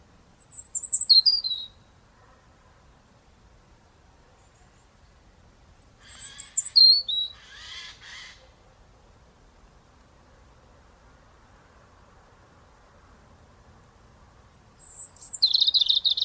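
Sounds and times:
European robin singing: 0:00.2 - 0:01.9, 0:04.4 - 0:08.4, 0:14.6 - 0:16.2.

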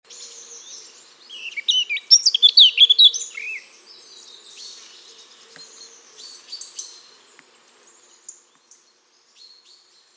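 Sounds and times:
Eurasian blackcap Sylvia atricapilla singing: 0:00.1 - 0:03.7.

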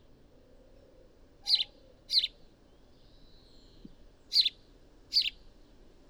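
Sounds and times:
House sparrow Passer domesticus chirping: 0:01.5 - 0:02.3, 0:05.1 - 0:05.3.

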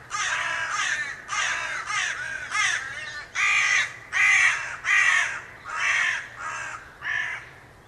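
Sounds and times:
Carrion crow Corvus corone harsh rasping caws: 0:00.1 - 0:07.6.

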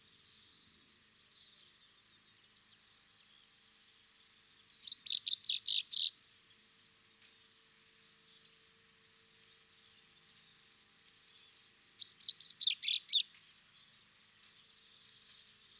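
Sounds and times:
common chaffinch (Fringilla coelebs) giving sharp high chirps: 0:04.8 - 0:06.1, 0:12.0 - 0:13.3.

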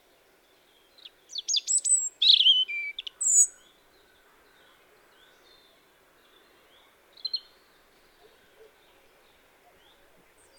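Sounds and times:
European robin singing thin descending slurs and high sharp notes: 0:00.7 - 0:10.5.

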